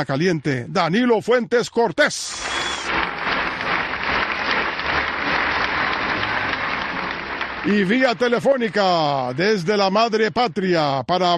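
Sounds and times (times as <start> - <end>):
speech: 0.0 - 3.0, 7.6 - 11.3
crowd applauding: 2.3 - 10.3.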